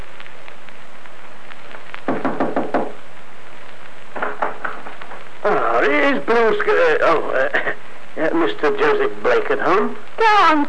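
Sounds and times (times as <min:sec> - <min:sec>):
firm knocking on a front door: 0:02.1 - 0:03.0, 0:04.2 - 0:05.0
speech: 0:05.8 - 0:10.6.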